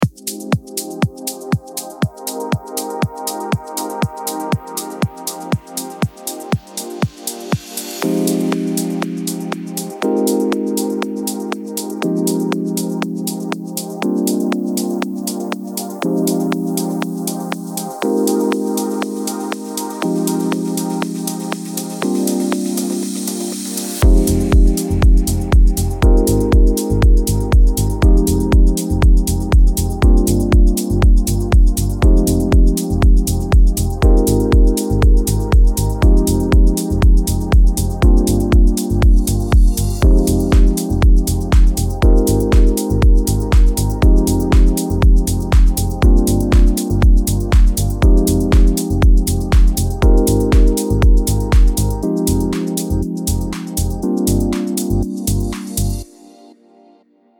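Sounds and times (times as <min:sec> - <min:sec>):
launchpad electronic music in F minor: 0:00.0 - 0:56.8.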